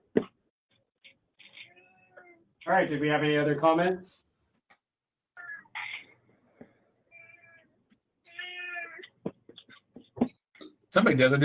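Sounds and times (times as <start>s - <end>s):
cat meowing: 1.5s - 2.5s, 5.4s - 5.9s, 7.1s - 9.2s
speech: 2.7s - 4.3s, 11.0s - 11.4s.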